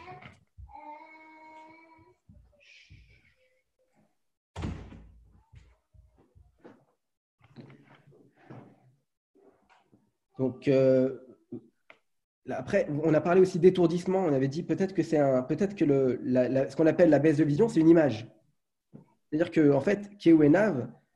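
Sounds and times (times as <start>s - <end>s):
door shutting with a solid thud: 4.6s - 5.3s
speech: 10.4s - 11.6s, 12.5s - 18.4s, 19.3s - 21.0s.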